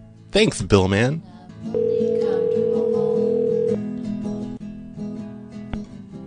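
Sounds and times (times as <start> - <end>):
faint music: 0.0 - 6.2
speech: 0.4 - 1.8
steady electronic ringback tone of a phone line: 1.8 - 3.8.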